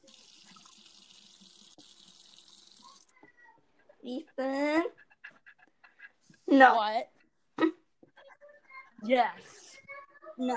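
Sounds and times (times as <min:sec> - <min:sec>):
tap running water: 0:00.0 - 0:03.3
speech: 0:04.0 - 0:05.0, 0:06.6 - 0:07.1, 0:09.1 - 0:09.6, 0:10.4 - 0:10.5.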